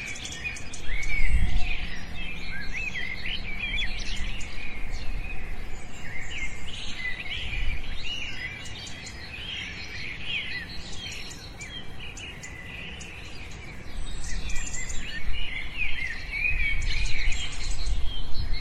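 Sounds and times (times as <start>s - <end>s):
birds calling and chirping in a forest: 0.0s - 18.5s
low rumbling wind: 0.0s - 18.5s.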